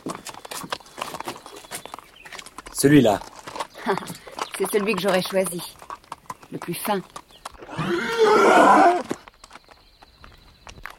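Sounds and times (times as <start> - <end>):
horse hooves clip-clopping on a hard surface as horses are led out: 0.0 - 10.9
speech: 2.8 - 5.8, 6.5 - 7.2, 7.8 - 9.1.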